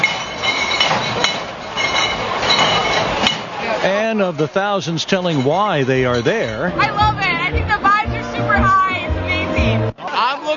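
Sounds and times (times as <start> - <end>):
beer mugs clinking together: 0.0 - 7.3
steady bustling crowd din: 0.0 - 10.5
speech: 4.1 - 7.9.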